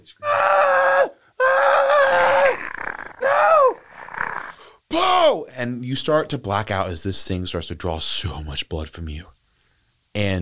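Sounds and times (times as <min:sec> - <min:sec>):
speech: 0:00.1 - 0:00.3, 0:05.3 - 0:09.4, 0:10.2 - 0:10.4
person voicing shrieks of a small hair-covered golem-like creature: 0:00.2 - 0:05.4
rough breathy growling: 0:01.8 - 0:04.8.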